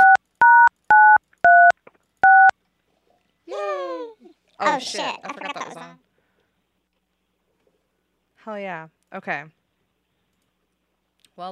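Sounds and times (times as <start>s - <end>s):
telephone keypad DTMF tones dialing sixes: 0.0s - 2.5s
speech: 4.8s - 6.0s, 8.4s - 9.6s, 11.4s - 11.5s.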